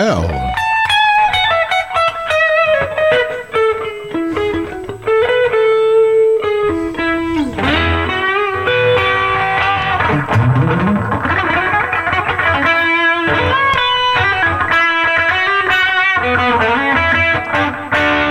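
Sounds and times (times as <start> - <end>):
speech: 0.0 - 0.6
electric guitar through distortion pedal: 0.0 - 18.2.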